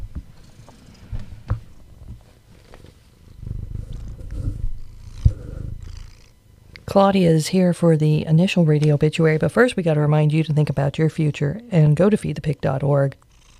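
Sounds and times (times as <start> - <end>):
cat purring into the microphone: 0.3 - 8.5, 9.1 - 13.5
speech: 6.9 - 13.2.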